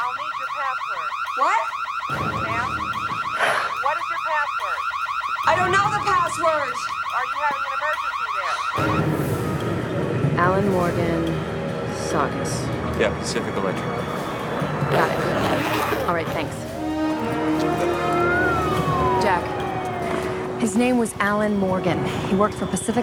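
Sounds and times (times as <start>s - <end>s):
electronic alarm blaring with warbling cycling tones: 0.0s - 11.1s, 12.0s - 23.0s
speech: 0.7s - 2.3s, 4.5s - 9.2s, 10.4s - 11.5s, 12.1s - 14.2s, 14.9s - 18.3s, 20.6s - 23.0s.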